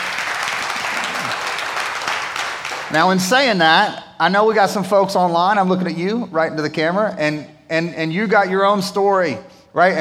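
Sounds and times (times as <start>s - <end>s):
audience applause: 0.0s - 3.1s
speech: 2.9s - 9.9s.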